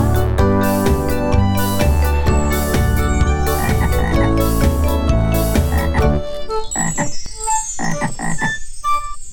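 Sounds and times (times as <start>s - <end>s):
bouncy musical passage: 0.0s - 9.2s
frog croaking: 3.6s - 4.3s, 5.7s - 9.3s.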